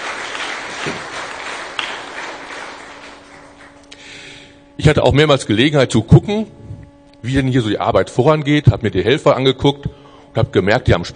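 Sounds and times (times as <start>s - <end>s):
audience applauding volunteer helpers: 0.0s - 3.9s
speech: 0.8s - 1.1s, 4.8s - 6.6s, 7.2s - 11.1s.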